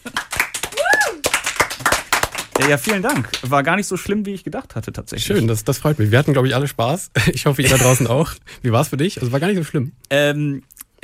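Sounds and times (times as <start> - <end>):
audience applauding with hand claps: 0.0 - 3.6
whooping cheer: 0.6 - 1.4
speech: 2.6 - 11.0.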